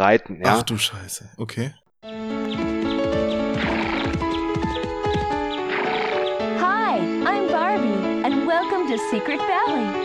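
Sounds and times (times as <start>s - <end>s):
speech: 0.0s - 1.8s, 8.9s - 10.0s
sustained video game musical backdrop: 2.0s - 10.0s
video game horse hooves trotting: 2.6s - 6.3s.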